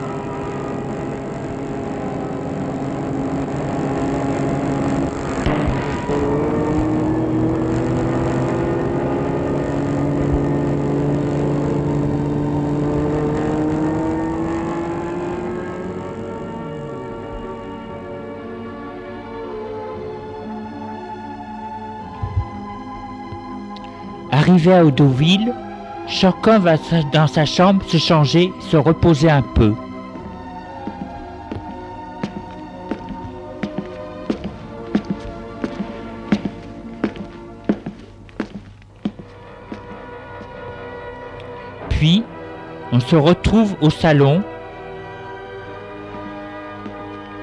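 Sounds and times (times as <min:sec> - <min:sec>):
car engine droning while travelling along a road: 0:00.0 - 0:20.0, 0:21.6 - 0:47.4
brief thump: 0:22.2 - 0:22.6
speech: 0:24.5 - 0:29.8, 0:43.1 - 0:44.5.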